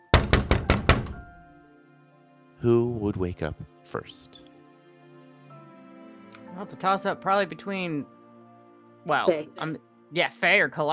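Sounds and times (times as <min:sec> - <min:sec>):
heavy pounding knocks on a front door: 0:00.0 - 0:01.4
speech: 0:02.6 - 0:04.5, 0:06.6 - 0:08.2, 0:09.0 - 0:10.9.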